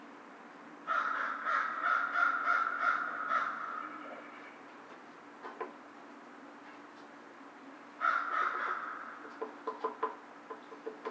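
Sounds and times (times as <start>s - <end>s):
faint low steady hum: 0.0s - 9.7s
American crow giving a harsh drawn-out nasal caw: 0.9s - 4.6s, 8.0s - 9.4s.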